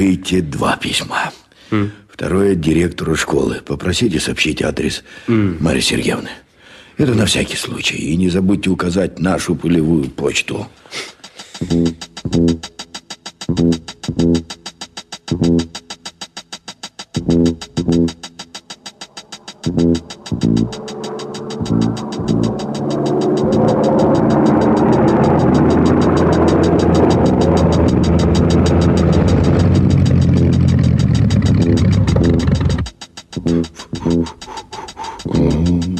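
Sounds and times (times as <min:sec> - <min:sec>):
speech: 0:00.0 - 0:12.8, 0:13.5 - 0:14.7, 0:15.3 - 0:15.8, 0:17.2 - 0:18.3, 0:19.6 - 0:21.0, 0:21.6 - 0:22.1
airplane engine coughing, sputtering, roaring and stalling: 0:10.9 - 0:35.9.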